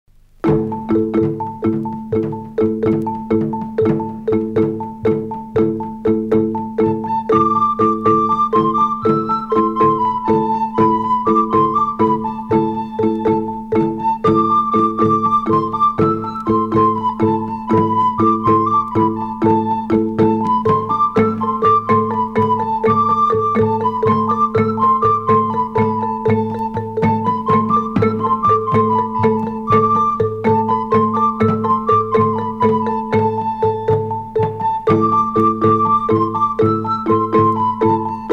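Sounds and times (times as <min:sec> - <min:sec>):
instrumental music in 7 8: 0:00.1 - 0:38.3.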